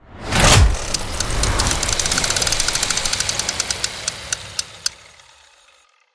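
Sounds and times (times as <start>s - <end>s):
single reel spinning: 0.6s - 6.1s.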